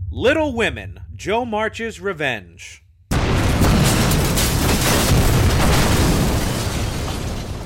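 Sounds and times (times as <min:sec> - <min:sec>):
speech: 0:00.2 - 0:02.8
crackling debris from explosion: 0:03.1 - 0:07.6
huge explosion: 0:03.1 - 0:07.6.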